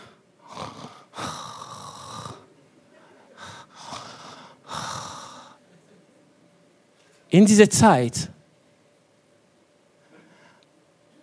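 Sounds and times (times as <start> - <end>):
voice imitating loud raspy snoring: 0.0 - 2.5
speech: 7.3 - 8.3.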